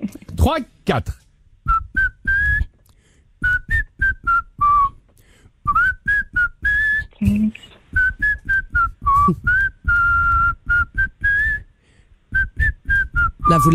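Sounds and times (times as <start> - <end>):
speech: 0.4 - 1.2, 13.6 - 13.7
man whistling a lively pop melody: 1.6 - 2.8, 3.4 - 5.0, 5.6 - 13.7.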